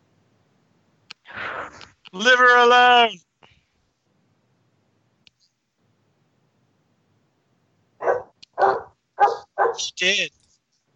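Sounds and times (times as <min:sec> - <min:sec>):
speech: 0:02.1 - 0:03.3, 0:09.8 - 0:10.4
dog barking eagerly and excitedly: 0:08.0 - 0:09.9.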